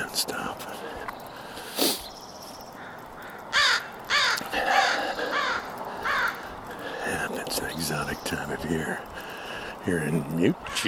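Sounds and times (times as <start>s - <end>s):
faint outdoor hiss: 0.0s - 10.8s
crows cawing: 2.7s - 7.4s, 8.9s - 9.8s, 10.6s - 10.8s
speech: 9.8s - 10.8s.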